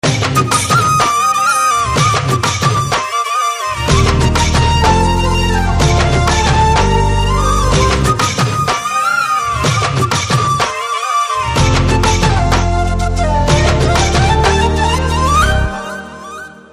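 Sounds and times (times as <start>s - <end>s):
Telugu flute ringtone background music: 0.1s - 16.7s.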